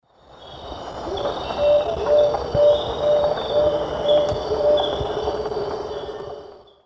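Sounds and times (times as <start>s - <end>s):
Megascops watsonii call: 1.1s - 5.4s.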